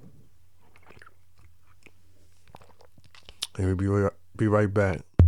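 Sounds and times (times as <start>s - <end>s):
person sipping a drink from a jug: 0.6s - 3.6s
speech: 3.6s - 5.1s.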